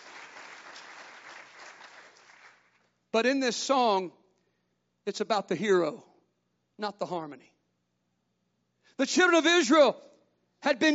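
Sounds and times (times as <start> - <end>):
congregation clapping hands: 0.0 - 3.0
speech: 3.1 - 4.2, 5.0 - 6.1, 6.8 - 7.5, 8.9 - 10.9.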